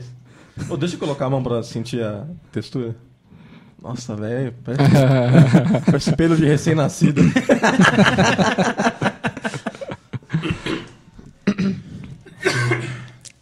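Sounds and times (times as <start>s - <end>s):
speech: 0.0s - 3.1s, 3.8s - 8.9s
laughter: 4.7s - 10.7s
several people coughing in a noisy room: 7.0s - 13.2s
throat sounds: 10.3s - 13.2s.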